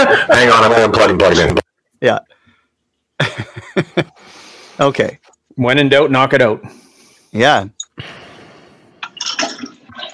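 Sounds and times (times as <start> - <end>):
speech: 0.1 - 2.3, 3.2 - 8.2
toilet flushing in a bathroom: 9.2 - 10.1.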